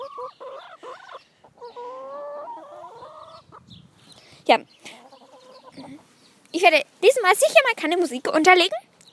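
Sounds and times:
chickens clucking and cackling: 0:00.0 - 0:06.5
speech: 0:04.5 - 0:04.8, 0:06.6 - 0:08.8.

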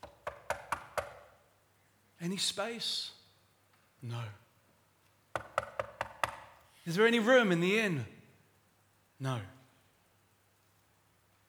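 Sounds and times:
knocking on a door: 0:00.0 - 0:01.3, 0:05.4 - 0:06.5
speech: 0:02.2 - 0:03.2, 0:04.0 - 0:04.4, 0:06.9 - 0:08.2, 0:09.2 - 0:09.6.

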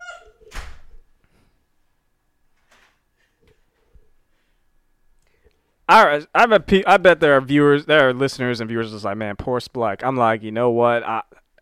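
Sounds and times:
heavy door thud as someone walks out: 0:00.5 - 0:01.0
speech: 0:05.9 - 0:11.3.

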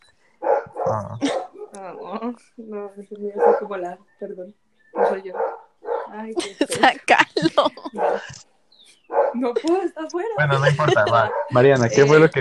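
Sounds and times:
dog barking and yipping: 0:00.4 - 0:02.1, 0:03.4 - 0:03.8, 0:05.0 - 0:06.2, 0:07.9 - 0:08.3, 0:09.1 - 0:09.4, 0:11.1 - 0:11.7
speech: 0:00.9 - 0:08.5, 0:09.1 - 0:12.3
laughter: 0:06.4 - 0:08.4, 0:10.4 - 0:12.2.

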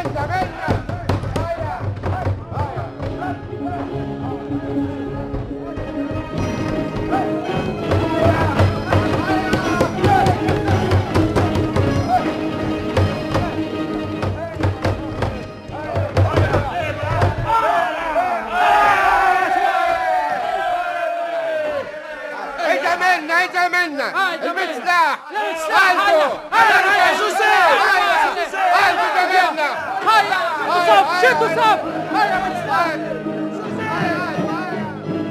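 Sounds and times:
dull thumps and heavy knocks: 0:00.0 - 0:03.4, 0:07.8 - 0:12.2, 0:12.9 - 0:17.6
crowd shouting and chattering: 0:00.3 - 0:14.7, 0:15.4 - 0:35.1.

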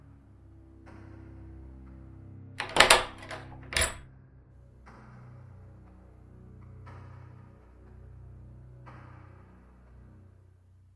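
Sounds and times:
metallic door handle twisted with clicks: 0:02.6 - 0:04.0.

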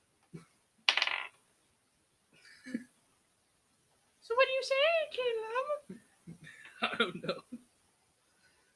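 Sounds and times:
dice clacking together on a tabletop: 0:00.9 - 0:01.4
speech: 0:04.6 - 0:06.0, 0:06.8 - 0:07.5.

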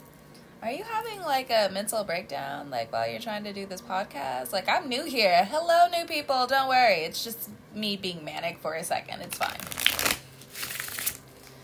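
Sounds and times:
speech: 0:00.6 - 0:09.8
tarot card deck being shuffled: 0:09.4 - 0:11.6.

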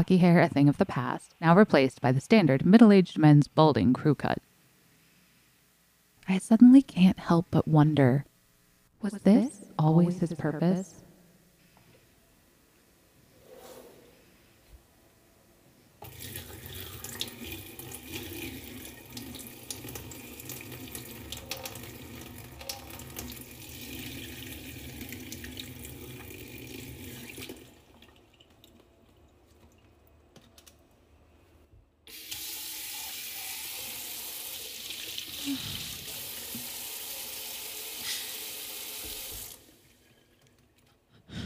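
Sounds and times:
speech: 0:00.0 - 0:04.5, 0:06.3 - 0:08.3, 0:09.0 - 0:11.0
rosé wine poured down a sink drain: 0:16.0 - 0:28.7, 0:32.1 - 0:40.4.

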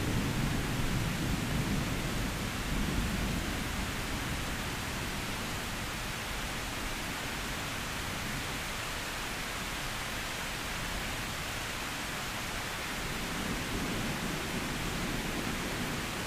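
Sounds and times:
low rumbling thunder: 0:00.0 - 0:05.0, 0:13.0 - 0:16.2
heavy rain: 0:00.0 - 0:16.2.

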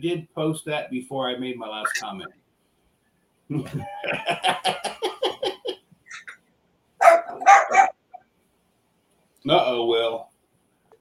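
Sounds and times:
speech: 0:00.0 - 0:02.4, 0:03.5 - 0:05.5, 0:09.4 - 0:10.3
laughter: 0:03.5 - 0:05.8
dachshund whining yips: 0:06.1 - 0:06.4, 0:07.0 - 0:08.0
dachshund barking: 0:07.0 - 0:08.0.

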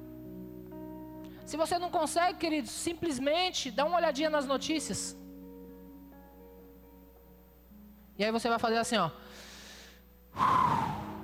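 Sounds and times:
speech: 0:01.5 - 0:05.2, 0:08.2 - 0:09.4, 0:10.4 - 0:10.8
deep inhale through the nose: 0:09.2 - 0:11.2.

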